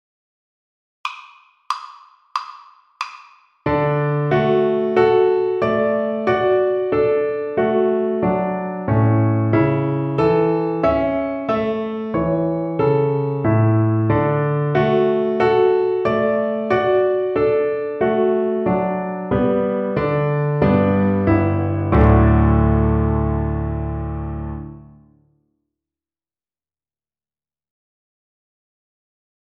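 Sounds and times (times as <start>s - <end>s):
piano accompaniment: 1.7s - 25.2s.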